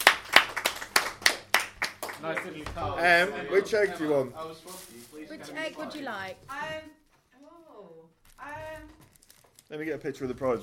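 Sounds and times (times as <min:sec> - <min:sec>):
hand claps at a home game: 0:00.0 - 0:02.8
speech: 0:02.2 - 0:07.0, 0:09.7 - 0:10.6.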